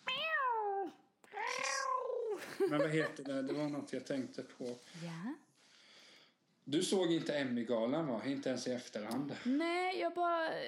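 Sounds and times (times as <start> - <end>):
cat meowing: 0.0 - 2.4
laughter: 2.4 - 4.1
speech: 2.6 - 5.5, 6.6 - 10.6.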